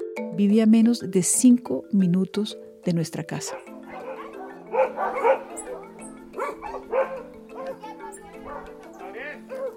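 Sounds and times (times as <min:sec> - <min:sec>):
speech: 0:00.4 - 0:03.7
several dogs barking and yipping while fighting: 0:03.3 - 0:09.7.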